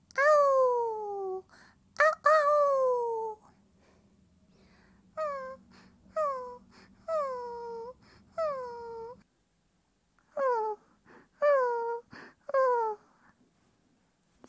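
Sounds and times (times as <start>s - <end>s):
person imitating a dog whining and howling: 0.1s - 1.4s, 2.0s - 3.5s, 5.2s - 5.6s, 6.2s - 9.2s, 11.4s - 13.0s.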